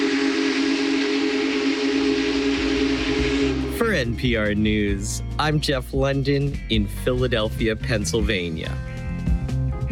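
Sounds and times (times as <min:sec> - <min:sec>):
steam locomotive whistle blowing: 0:00.0 - 0:04.6
speech: 0:03.8 - 0:08.9.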